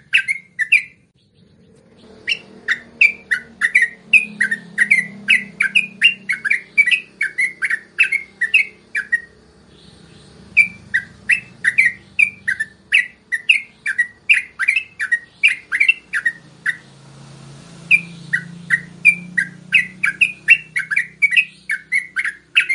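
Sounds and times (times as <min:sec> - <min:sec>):
Yellow-vented Bulbul song of fast chirruping notes: 0:00.0 - 0:22.7.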